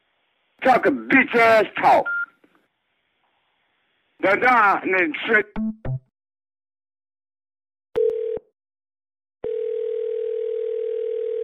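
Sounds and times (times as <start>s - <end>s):
speech: 0.6s - 2.2s, 4.2s - 5.9s
telephone dial tone after a call is hung up: 8.0s - 8.5s, 9.4s - 11.4s.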